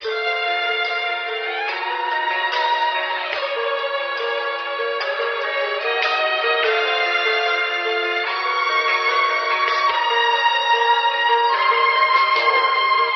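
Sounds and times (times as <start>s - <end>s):
strings in phonk music loops: 0.0s - 13.1s.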